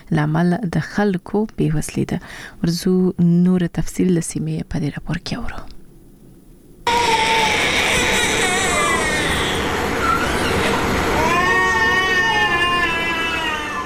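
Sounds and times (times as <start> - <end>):
speech: 0.1 - 5.8
malnourished children crying in a hospital in Helmand: 6.9 - 13.8.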